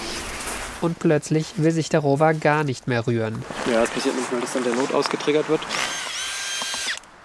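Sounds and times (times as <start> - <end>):
speech: 0.8 - 5.9
power tool whirring as engineers loosen screws on a robotic rover: 5.6 - 7.0.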